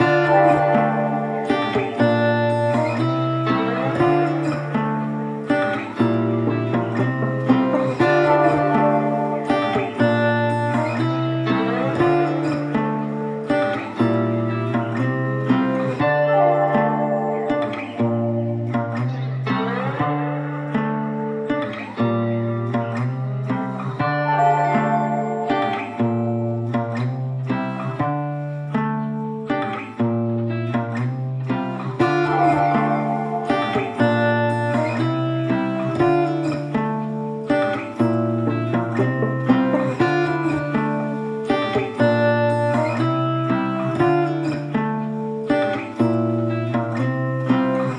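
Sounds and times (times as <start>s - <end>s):
guitar loops in D minor: 0.0s - 47.9s.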